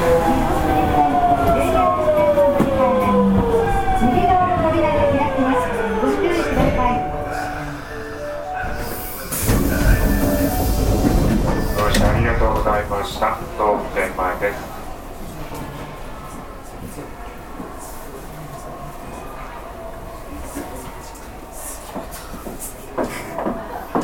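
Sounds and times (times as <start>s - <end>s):
subway train motor whine: 0.0s - 15.2s.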